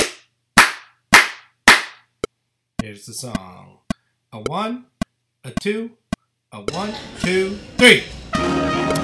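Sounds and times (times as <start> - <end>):
sharp hand claps: 0.0 - 2.0
speech: 2.8 - 8.9.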